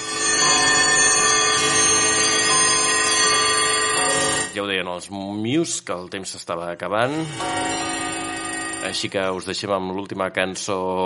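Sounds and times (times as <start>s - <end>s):
bells ringing in a dense shimmering peal: 0.0s - 4.7s, 7.1s - 9.5s
speech: 5.0s - 7.9s, 8.8s - 11.0s.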